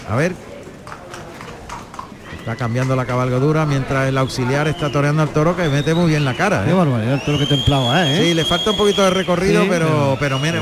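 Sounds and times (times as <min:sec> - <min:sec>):
speech: 0:00.1 - 0:00.5, 0:02.4 - 0:10.6
horse hooves clip-clopping entering the patio de cuadrillas of a bullring: 0:00.6 - 0:03.8.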